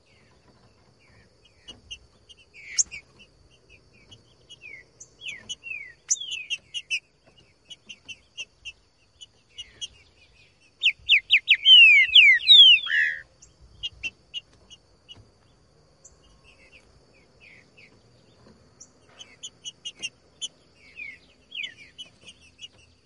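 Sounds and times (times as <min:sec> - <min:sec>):
Green-winged Saltator whistling song in the bush: 0:01.1 - 0:07.1, 0:07.7 - 0:14.4, 0:18.8 - 0:23.0.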